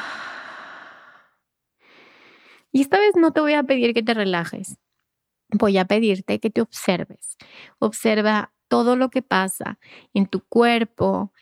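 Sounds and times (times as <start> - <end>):
deep breathing during a guided relaxation exercise: 0.0 - 2.7
speech: 2.7 - 4.8, 5.5 - 11.3.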